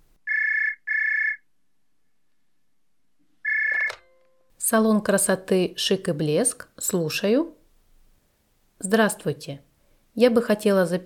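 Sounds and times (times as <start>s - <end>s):
telephone ringing with electronic trills: 0.3s - 1.4s, 3.4s - 4.5s
telephone pickup click: 3.6s - 4.4s
speech: 4.7s - 7.6s, 8.8s - 11.0s.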